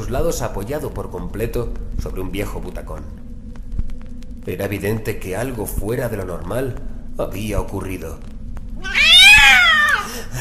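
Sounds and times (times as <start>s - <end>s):
speech: 0.1s - 3.2s, 4.4s - 8.3s
cat giving a long drawn-out meow: 8.8s - 10.2s.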